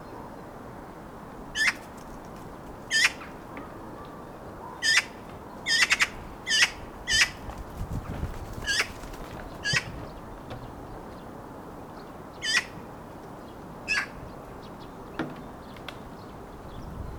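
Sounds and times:
low background noise: 0.0s - 17.1s
Eurasian magpie Pica pica giving harsh rasping chattering notes: 4.8s - 7.4s.

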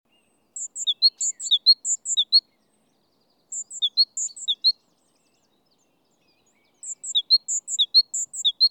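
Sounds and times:
great tit calling: 0.5s - 2.4s, 3.5s - 4.8s, 6.7s - 8.6s.

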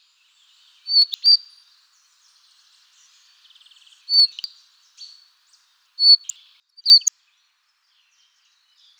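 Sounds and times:
bird singing high thin chirps: 0.3s - 7.1s.

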